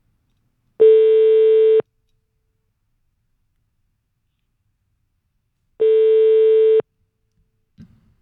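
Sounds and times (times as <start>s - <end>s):
telephone ringback tone on an outgoing call from a radio show: 0.8s - 1.8s, 5.8s - 6.8s.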